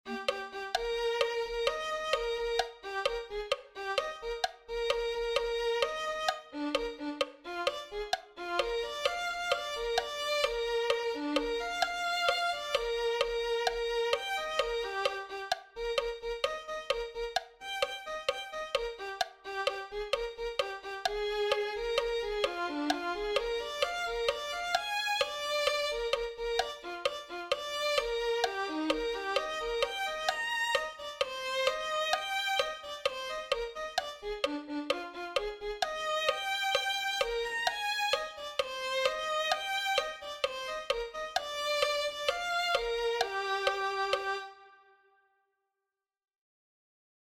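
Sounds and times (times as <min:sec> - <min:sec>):
violin melody: 0:00.0 - 0:45.2.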